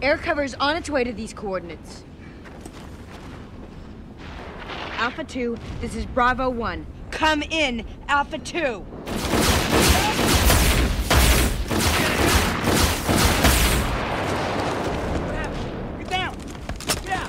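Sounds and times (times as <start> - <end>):
speech: 0.0 - 2.1, 5.0 - 9.0
heavy gunfire in a military firefight: 9.0 - 16.1.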